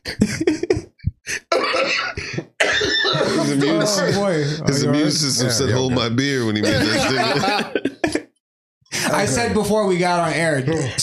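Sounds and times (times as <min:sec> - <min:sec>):
laughter: 0:00.0 - 0:08.4, 0:09.0 - 0:09.6
person coughing: 0:00.6 - 0:03.6
speech: 0:03.6 - 0:07.8, 0:09.2 - 0:11.0.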